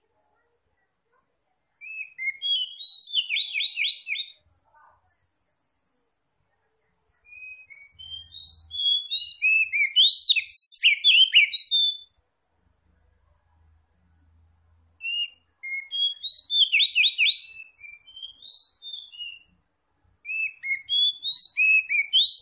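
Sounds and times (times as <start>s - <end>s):
Oriental magpie-robin singing vigorously: 1.8s - 4.4s, 7.2s - 12.2s, 15.0s - 19.6s, 20.2s - 22.3s.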